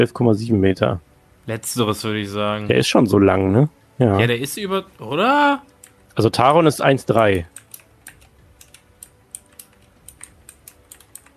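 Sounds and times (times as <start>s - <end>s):
speech: 0.0s - 7.6s
key clicks typing a message on a phone or keyboard: 7.5s - 11.3s.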